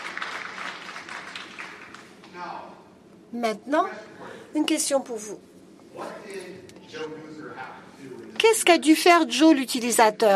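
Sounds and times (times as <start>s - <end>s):
applause from a small group: 0.0s - 2.2s
speech: 2.4s - 10.3s.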